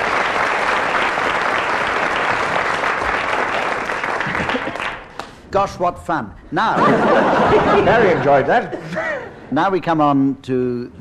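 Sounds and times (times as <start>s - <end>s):
large audience applauding loudly: 0.0s - 5.4s
laughter: 4.2s - 5.0s, 6.7s - 9.5s
speech: 5.5s - 10.9s.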